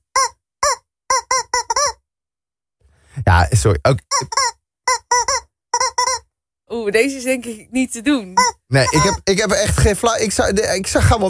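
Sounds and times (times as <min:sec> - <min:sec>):
rubber chicken toy squeaking a short melody: 0:00.0 - 0:02.0, 0:04.0 - 0:06.3, 0:08.3 - 0:09.3
speech: 0:03.2 - 0:04.4, 0:06.8 - 0:11.2.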